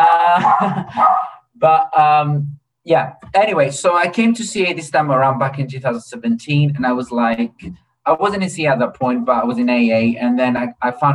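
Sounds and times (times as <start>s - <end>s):
laughter: 0.0s - 1.4s
pet dog barking and yipping: 0.4s - 1.4s
speech: 0.6s - 11.1s.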